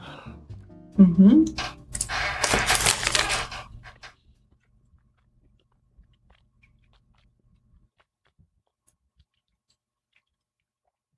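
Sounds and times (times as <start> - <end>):
speech: 1.0 - 1.6
chewing cheese with bloomy rind: 2.0 - 4.0, 6.1 - 11.0.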